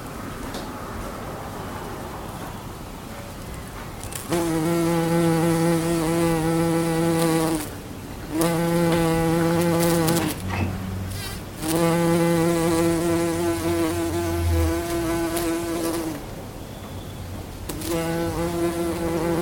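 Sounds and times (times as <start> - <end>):
bumblebee buzzing: 4.1 - 16.3, 17.7 - 19.3.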